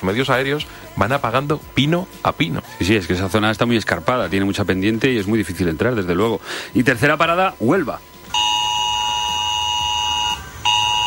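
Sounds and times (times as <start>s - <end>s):
speech: 0.0s - 8.4s
emergency alert tone from residents' mobile phones in Villanueva de las Cruces Huelva Spain: 6.8s - 11.0s.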